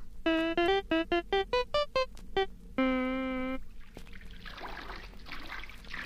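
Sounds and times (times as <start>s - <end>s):
quick run of bright musical notes and a held tone: 0.2s - 3.6s.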